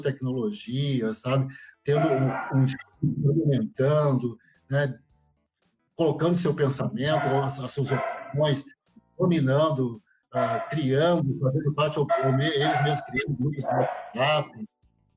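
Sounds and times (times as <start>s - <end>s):
speech: 0.0s - 5.0s, 6.0s - 14.7s
dog barking: 1.9s - 2.8s, 7.0s - 8.6s, 10.4s - 11.2s, 12.0s - 14.5s.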